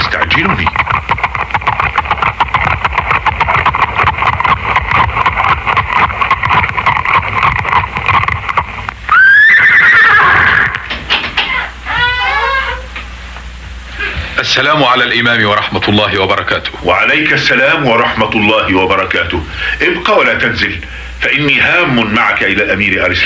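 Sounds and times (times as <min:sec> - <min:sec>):
horses' hooves approaching outside: 0:00.0 - 0:12.2
speech: 0:00.4 - 0:00.8, 0:14.5 - 0:23.2.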